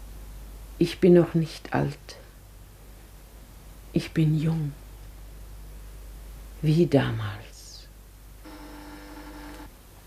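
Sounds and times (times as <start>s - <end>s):
speech: 0.8s - 2.2s, 3.9s - 4.8s, 6.6s - 7.5s
telephone ringing with a sustained electronic ring tone: 8.5s - 9.7s.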